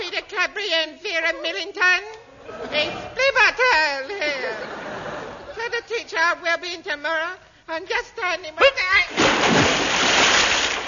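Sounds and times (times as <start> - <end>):
speech: 0.4 - 4.9, 5.6 - 9.6
laughter: 4.1 - 5.6
splash of someone falling into water: 9.1 - 10.8.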